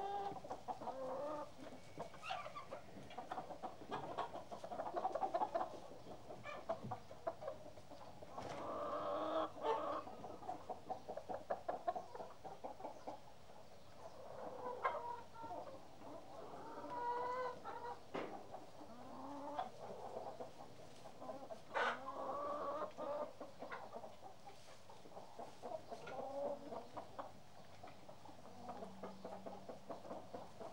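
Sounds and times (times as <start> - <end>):
chickens clucking: 0.0 - 30.7.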